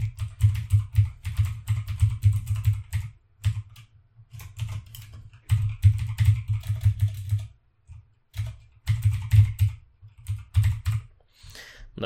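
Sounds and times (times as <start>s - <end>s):
typing an email address on a computer keyboard: 0.0s - 11.1s.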